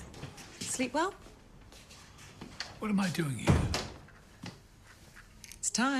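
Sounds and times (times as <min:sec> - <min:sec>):
speech: 0:00.8 - 0:01.3, 0:02.8 - 0:03.6, 0:05.8 - 0:05.9
door thudding shut: 0:03.4 - 0:04.0.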